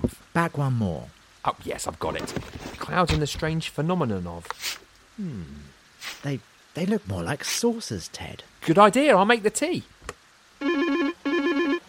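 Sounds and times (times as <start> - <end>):
speech: 0.4 - 10.0
telephone ringing with an electronic trill: 10.6 - 11.8.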